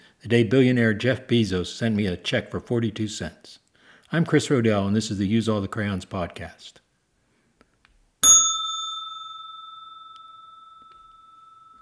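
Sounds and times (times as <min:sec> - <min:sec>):
speech: 0:00.2 - 0:06.8
old porch bell ringing: 0:08.2 - 0:11.7.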